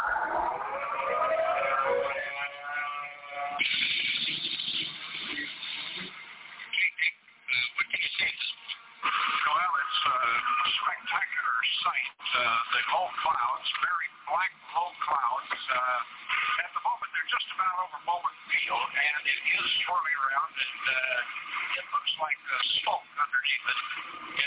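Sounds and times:
civil defense tornado siren wailing over radio-quality audio: 0.0 - 3.6
radio crackling bursts: 0.0 - 24.4.

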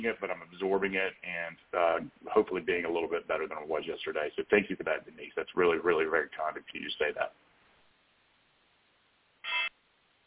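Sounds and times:
speech: 0.0 - 7.4
quiet hiss: 0.0 - 10.2
short electronic beep from a phone being turned off: 9.4 - 9.7.

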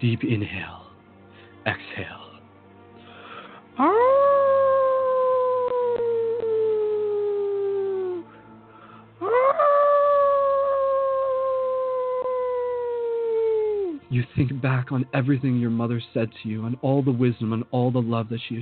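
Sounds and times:
speech: 0.0 - 0.8, 1.6 - 2.2, 3.8 - 4.3, 14.1 - 18.6
wolf howling: 3.8 - 8.3, 9.2 - 14.0.

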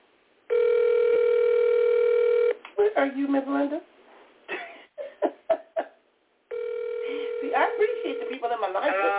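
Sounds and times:
electronic phone ringing tone of an unanswered outgoing call: 0.5 - 2.6, 6.5 - 9.0
speech: 2.8 - 3.9.

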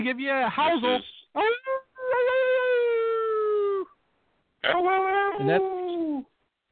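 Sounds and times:
speech: 0.0 - 1.8, 4.6 - 6.3
dog howling: 1.4 - 4.0, 4.6 - 6.3.

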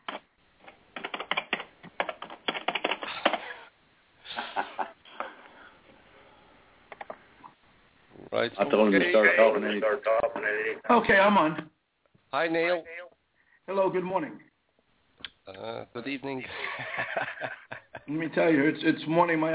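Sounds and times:
typing on a computer keyboard: 0.9 - 3.4
laughter: 4.3 - 5.4, 16.5 - 18.1
speech: 8.4 - 11.7, 12.3 - 12.9, 13.7 - 14.4, 15.9 - 19.5.

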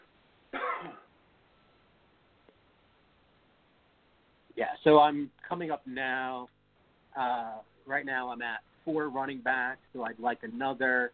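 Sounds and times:
loud cough with throat-clearing rasp: 0.5 - 1.1
speech: 4.8 - 6.6, 7.2 - 11.1.

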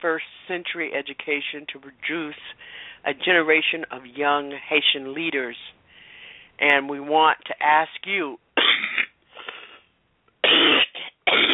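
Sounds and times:
speech: 0.0 - 5.8, 6.6 - 9.0
harsh loud coughing from an unwell adult: 8.6 - 11.5.

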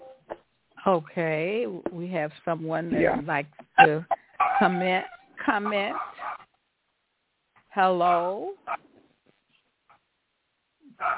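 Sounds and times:
speech: 0.8 - 6.1, 7.8 - 8.9
dog barking over a thin phone-like line: 5.9 - 6.5, 11.0 - 11.1.

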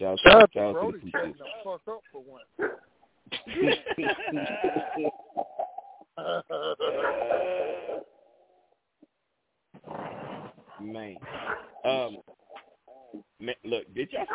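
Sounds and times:
speech: 0.0 - 5.1
laughter: 0.8 - 2.6, 3.3 - 7.5, 14.0 - 14.3
dog barking: 1.1 - 1.5, 2.6 - 2.8, 11.3 - 11.8, 14.2 - 14.3.

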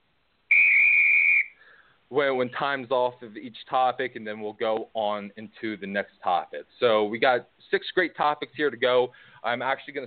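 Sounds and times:
short whistle marking the end of a timed topic on a sports discussion show: 0.5 - 1.8
speech: 2.1 - 10.0.

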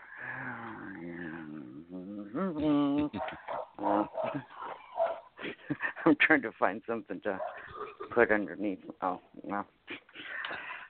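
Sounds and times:
speech: 2.4 - 4.5, 6.1 - 9.8
dog barking and yelping: 3.2 - 5.3, 7.4 - 7.7.

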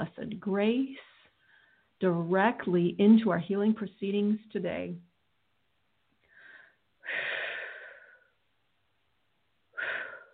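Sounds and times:
speech: 0.3 - 1.1, 2.0 - 5.1
deep breathing: 1.0 - 2.0, 6.2 - 8.4, 9.7 - 10.3.

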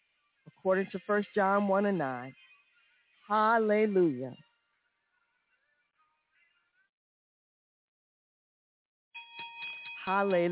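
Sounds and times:
speech: 0.6 - 2.4, 3.3 - 4.5, 10.1 - 10.5
bell ringing: 9.2 - 10.5.

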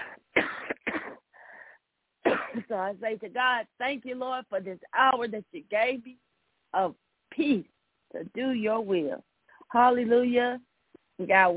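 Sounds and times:
unwell person coughing: 0.0 - 1.2, 2.3 - 2.7
speech: 2.7 - 11.5.

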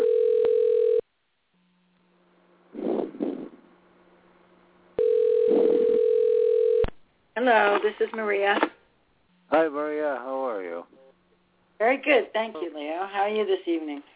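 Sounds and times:
telephone dial tone as a call is dialed: 0.0 - 1.0, 5.0 - 6.9
speech: 7.4 - 8.7, 9.5 - 11.0, 11.8 - 14.1.

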